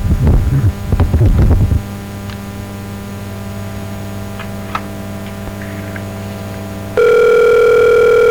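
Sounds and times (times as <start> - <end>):
steady low telephone line hum: 0.0 - 8.2
telephone line ringing tone: 5.8 - 8.2
telephone dialing tones: 7.0 - 8.2.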